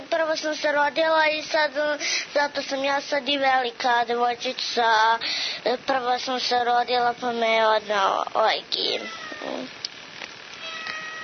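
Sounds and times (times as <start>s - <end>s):
speech: 0.4s - 9.9s
pet cat meowing: 8.9s - 9.7s, 10.6s - 11.2s.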